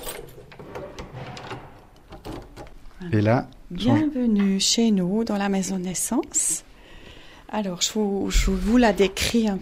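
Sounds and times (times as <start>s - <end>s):
door opening: 0.0s - 2.8s
speech: 3.0s - 6.7s, 7.5s - 9.6s.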